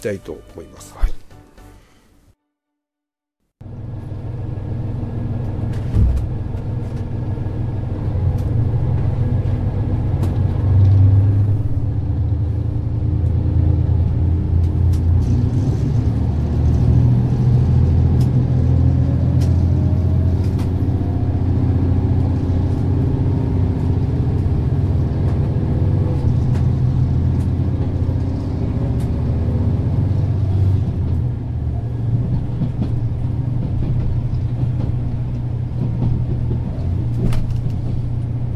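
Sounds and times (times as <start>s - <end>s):
speech: 0.0s - 1.2s
rumble of train motors and wheels inside a departing train: 3.6s - 38.5s.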